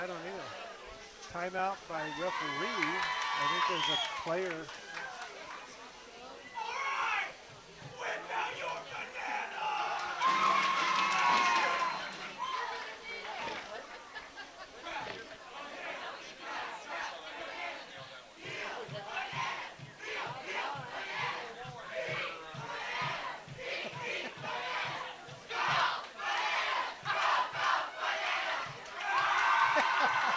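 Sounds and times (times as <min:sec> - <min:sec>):
large crowd chanting a rhythmic cheer in unison: 0:00.0 - 0:30.3
speech: 0:01.3 - 0:04.8
laughter: 0:10.3 - 0:16.2, 0:23.6 - 0:25.3, 0:29.3 - 0:30.3
regular beat: 0:18.4 - 0:27.7.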